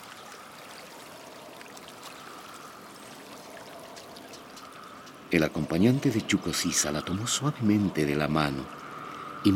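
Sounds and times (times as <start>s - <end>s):
river water rushing and babbling: 0.0s - 5.7s
small splashes and trickles: 0.0s - 6.5s
speech: 5.3s - 8.8s.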